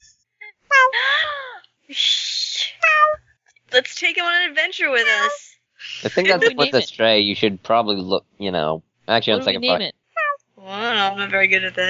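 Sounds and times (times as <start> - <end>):
speech: 1.9 - 2.2, 3.8 - 10.0, 10.6 - 11.8
cat meowing: 2.8 - 3.2, 6.1 - 6.9, 9.3 - 10.4
laughter: 6.0 - 9.8.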